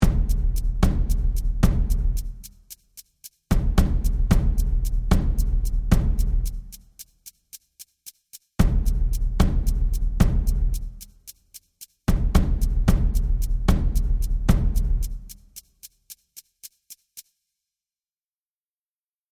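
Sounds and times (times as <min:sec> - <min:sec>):
taiko drumming: 0:00.0 - 0:02.2, 0:03.5 - 0:06.5, 0:08.6 - 0:10.8, 0:12.1 - 0:15.0.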